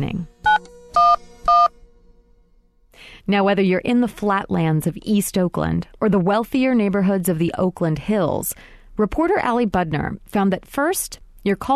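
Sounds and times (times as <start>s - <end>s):
speech: 0.0s - 0.3s, 3.3s - 11.7s
cell phone keypad tones dialing: 0.4s - 1.7s.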